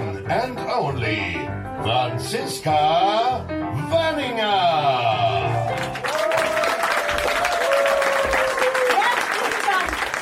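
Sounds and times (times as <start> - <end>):
speech: 0.3 - 6.1
large crowd applauding a cabaret performer: 5.4 - 10.2.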